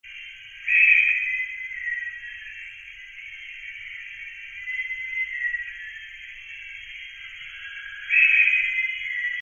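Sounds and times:
Bornean peacock pheasant calling: 0.1s - 9.4s.

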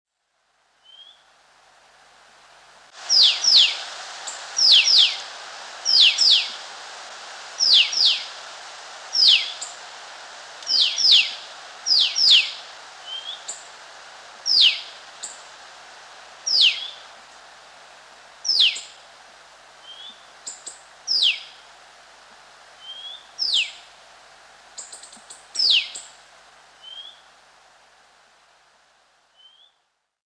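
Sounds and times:
blackish cuckooshrike calling: 3.1s - 5.3s, 5.9s - 6.7s, 7.6s - 8.4s, 9.1s - 9.8s, 10.7s - 13.6s, 14.4s - 15.4s, 16.5s - 17.1s, 18.4s - 19.0s, 19.8s - 21.6s, 22.8s - 23.9s, 24.7s - 26.1s.

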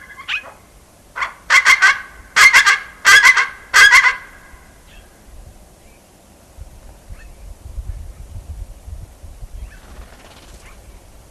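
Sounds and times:
Tibetan eared pheasant honking calls: 0.0s - 5.1s
faint low background noise: 0.0s - 11.3s.

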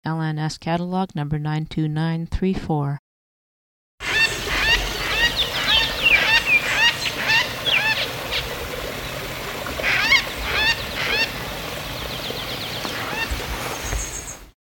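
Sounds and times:
speech: 0.0s - 3.0s
Greater Vasa Parrot whistling squawks in flight: 4.0s - 8.6s, 9.8s - 12.1s, 12.9s - 13.4s
steady hiss: 4.0s - 14.5s.

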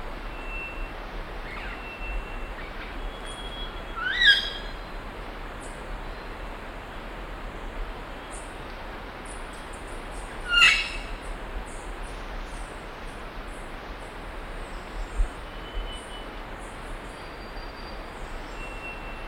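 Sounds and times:
steady hiss: 0.0s - 19.2s
Imperial amazon harsh calls: 10.5s - 11.0s.

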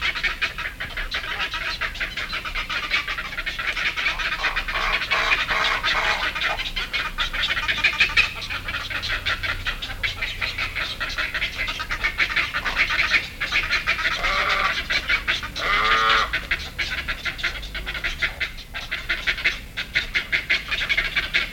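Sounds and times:
black-headed heron harsh nasal calls: 0.1s - 21.5s.

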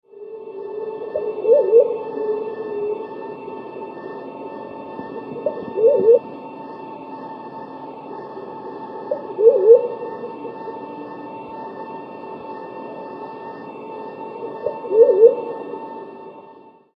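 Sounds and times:
white faced cuckoo dove: 1.0s - 3.2s, 4.9s - 6.4s, 8.7s - 10.9s, 14.5s - 15.9s.

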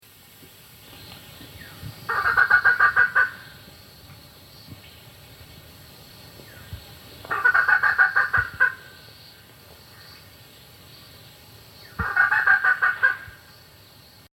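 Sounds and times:
Germain's peacock-pheasant calling: 1.6s - 3.7s, 6.4s - 10.3s, 11.8s - 13.6s.

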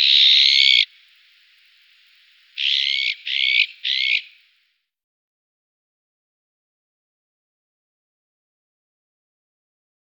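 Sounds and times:
azure-winged magpie harsh rasping calls: 0.0s - 0.9s, 2.6s - 4.4s.

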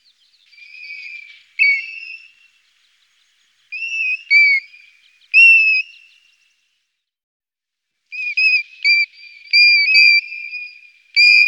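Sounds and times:
Golden plover giving plaintive whistled calls: 0.0s - 2.7s, 3.7s - 6.4s, 8.1s - 11.4s.

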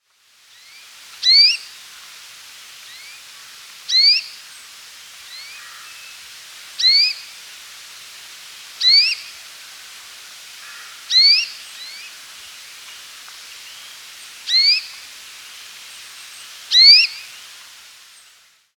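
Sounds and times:
pink-browed rosefinch calling: 1.2s - 1.6s, 3.9s - 4.3s, 6.8s - 7.2s, 8.8s - 9.3s, 10.6s - 12.1s, 14.5s - 15.0s, 16.7s - 17.3s.

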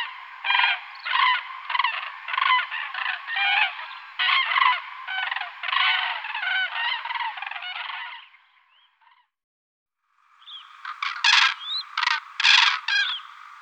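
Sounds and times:
crane honking calls: 0.0s - 8.3s, 10.4s - 13.5s.

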